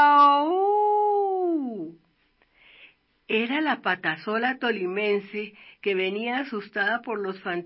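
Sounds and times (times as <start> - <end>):
howl: 0.0 - 1.9
speech: 3.3 - 7.6.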